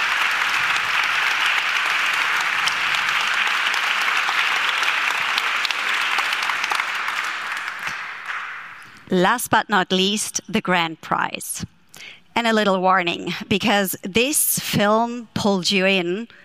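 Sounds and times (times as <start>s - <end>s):
large audience applause: 0.0s - 9.0s
speech: 9.1s - 16.4s.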